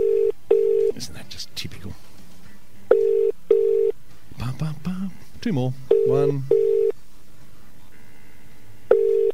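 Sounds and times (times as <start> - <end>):
speech: 1.0 - 2.1, 4.6 - 6.6
telephone line busy or unobtainable tone: 2.9 - 3.9, 5.9 - 6.9, 8.9 - 9.3.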